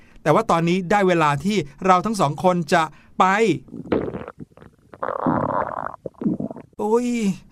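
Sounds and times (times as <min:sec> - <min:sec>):
speech: 0:00.2 - 0:03.9, 0:06.8 - 0:07.4
stomach growling: 0:03.7 - 0:06.8.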